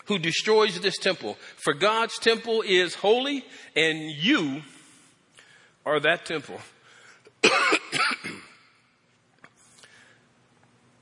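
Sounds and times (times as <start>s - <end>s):
speech: 0.1s - 4.8s, 5.8s - 6.8s
person with a cold coughing: 7.4s - 8.7s.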